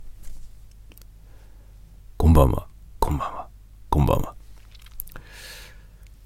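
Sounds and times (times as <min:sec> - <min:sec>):
low steady hum: 0:00.0 - 0:06.2
speech: 0:02.4 - 0:03.4
crunchy chewing of a biscuit: 0:04.5 - 0:05.2.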